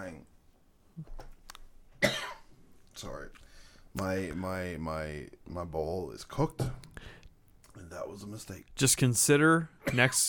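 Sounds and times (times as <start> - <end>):
person coughing: 2.0 - 2.5, 9.8 - 10.2
speech: 4.0 - 7.2, 7.8 - 10.2.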